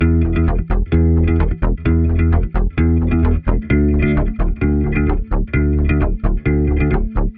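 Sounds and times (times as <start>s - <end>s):
electric bass rubber slug: 0.0s - 7.3s.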